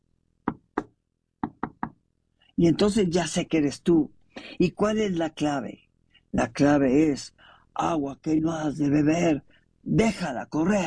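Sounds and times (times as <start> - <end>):
knuckles rapping on a door in a pattern: 0.5 - 2.0
speech: 2.6 - 10.8.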